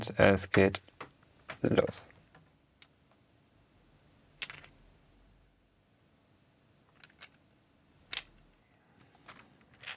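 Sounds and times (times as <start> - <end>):
speech: 0.0 - 0.9, 1.6 - 2.1
coins dropped into a small monkey figure: 6.9 - 7.4, 9.2 - 9.9.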